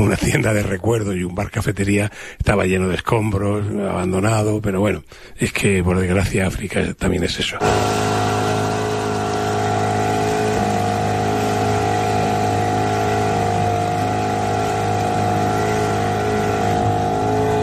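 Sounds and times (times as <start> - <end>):
speech: 0.0 - 8.1
fishing boat motor droning on a lake: 7.6 - 17.6.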